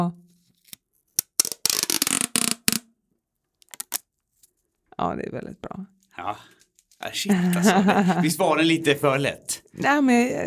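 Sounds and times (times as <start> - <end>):
speech: 0.0 - 0.2, 5.0 - 10.4
roll of tape being handled: 0.4 - 2.8, 3.6 - 4.6
laughter: 7.0 - 9.4.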